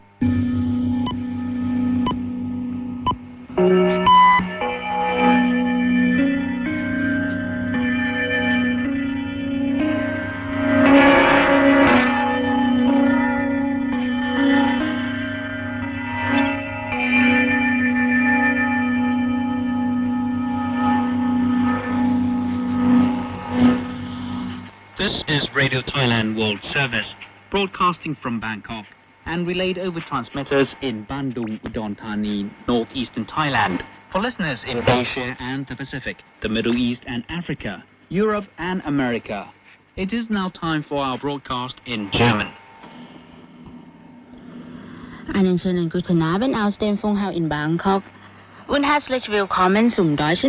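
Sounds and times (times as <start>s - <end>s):
steady low hum: 0.0s - 39.1s, 40.9s - 50.2s
Thai shortwave radio interval signal of gongs and glockenspiel: 0.2s - 24.7s
speech: 26.6s - 42.6s, 45.4s - 48.1s, 48.7s - 50.4s.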